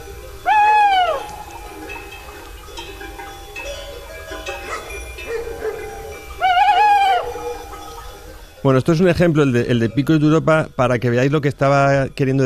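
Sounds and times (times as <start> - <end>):
tawny owl hooting at night in the Picos de Europa: 0.0 - 2.4, 4.7 - 8.4
speech: 8.6 - 12.4.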